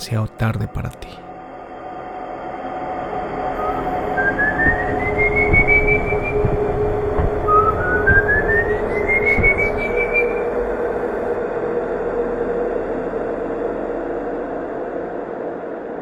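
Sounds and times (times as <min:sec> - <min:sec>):
speech: 0:00.1 - 0:01.3
eerie human whistling: 0:01.4 - 0:16.0
low rumble: 0:03.0 - 0:15.4
faint rhythmic clunks: 0:03.6 - 0:11.3.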